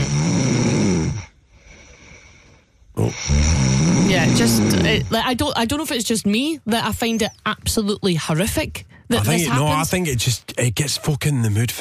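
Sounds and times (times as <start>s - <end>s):
person snoring: 0.0s - 5.1s
speech: 4.4s - 11.7s.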